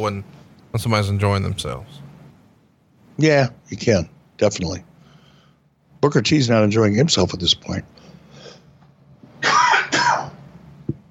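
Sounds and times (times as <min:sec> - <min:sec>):
speech: 0:00.0 - 0:02.1, 0:03.2 - 0:04.9, 0:06.0 - 0:08.0
coughing: 0:09.4 - 0:10.5.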